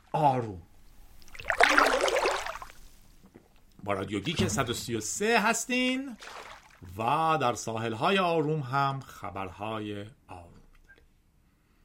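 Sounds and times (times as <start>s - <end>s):
speech: 0.2s - 0.7s, 3.8s - 10.6s
oar paddling a boat through water: 0.7s - 4.7s, 6.1s - 6.9s.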